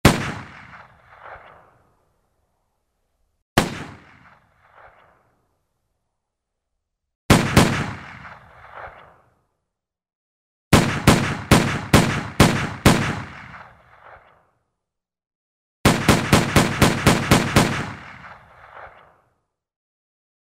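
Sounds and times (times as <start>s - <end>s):
pistol shot: 0.0s - 1.9s, 3.6s - 5.3s, 7.3s - 9.4s, 10.7s - 14.5s, 15.8s - 19.4s.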